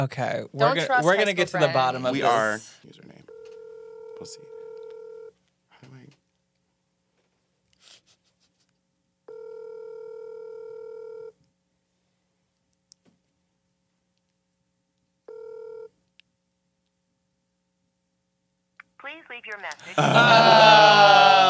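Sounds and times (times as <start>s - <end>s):
speech: 0.0s - 3.1s, 4.2s - 4.5s, 19.0s - 21.4s
phone dialing tones: 3.3s - 5.3s, 9.3s - 11.3s, 15.3s - 15.9s
laughter: 19.8s - 21.4s.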